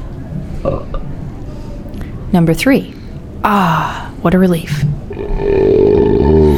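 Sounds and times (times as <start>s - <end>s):
speech: 0.6s - 1.0s, 2.3s - 5.7s
deep rumbling belch: 0.6s - 1.1s, 5.1s - 6.5s.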